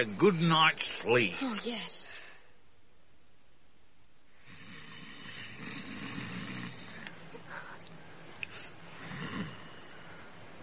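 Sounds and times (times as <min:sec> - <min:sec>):
speech: 0:00.0 - 0:02.0
steady hiss: 0:00.0 - 0:10.6
heavy rasping snoring: 0:04.4 - 0:07.1, 0:09.0 - 0:09.9.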